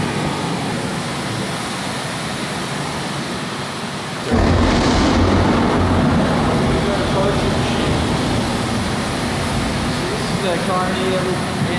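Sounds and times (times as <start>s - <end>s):
simulated rain-like hiss in an enclosed room: 0.0s - 11.7s
simulated deep rumble of thunder in an enclosed room: 4.3s - 10.5s.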